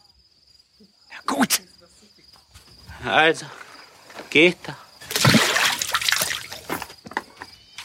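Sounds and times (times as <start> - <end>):
speech: 1.3 - 1.7, 3.0 - 3.6, 4.3 - 4.8
drinking water sloshing as it is poured: 5.1 - 6.7.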